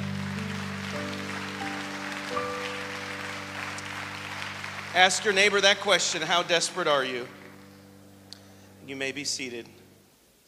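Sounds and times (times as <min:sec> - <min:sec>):
audience clapping to the Lord: 0:00.0 - 0:07.7
sustained organ or keyboard chords: 0:00.0 - 0:10.1
speech: 0:05.0 - 0:07.4, 0:08.9 - 0:09.8.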